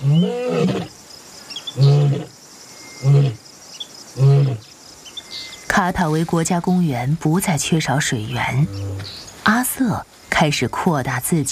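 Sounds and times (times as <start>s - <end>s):
lion roaring in Katavi National Park: 0.0s - 0.9s, 1.8s - 2.3s, 3.0s - 3.4s, 4.2s - 4.6s, 8.5s - 9.2s
faint insect chirping: 0.0s - 11.5s
speech: 5.9s - 11.5s.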